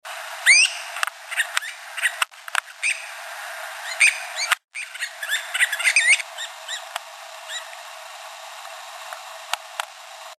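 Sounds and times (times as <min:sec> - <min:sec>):
Nutting's flycatcher calling in Arizona: 0:00.4 - 0:03.2, 0:03.8 - 0:07.8.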